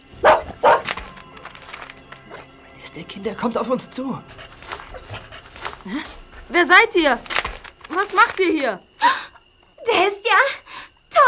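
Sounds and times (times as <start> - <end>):
dog barking: 0.0 - 2.5, 4.3 - 8.4
speech: 2.9 - 4.6, 5.8 - 9.2.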